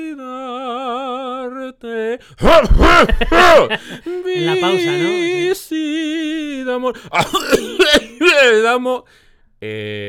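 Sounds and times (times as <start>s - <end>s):
speech: 1.7s - 10.0s
laughter: 2.7s - 5.6s
long drawn-out vocal sound: 3.6s - 5.6s
person coughing imitating a theatre audience: 7.1s - 8.4s.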